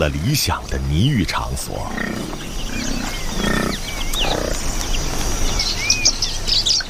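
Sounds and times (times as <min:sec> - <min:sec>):
speech: 0:00.0 - 0:02.4
Lilian's lovebirds chirping while searching sticky mud for seeds: 0:00.0 - 0:06.8
busy outdoor background: 0:00.0 - 0:06.8
deeper animal grunts and rumbles: 0:01.7 - 0:04.7.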